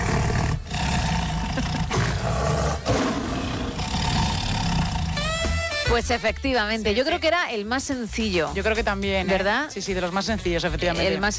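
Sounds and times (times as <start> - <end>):
tiger roaring with a deep rumbling growl: 0.0 - 5.6
speech: 6.0 - 11.3.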